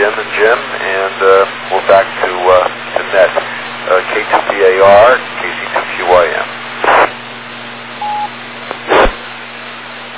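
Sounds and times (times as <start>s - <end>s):
radio static bursts: 0.0s - 7.2s, 8.0s - 9.3s
steady low hum: 0.0s - 10.1s
telephone dialing tone over radio: 8.0s - 8.3s.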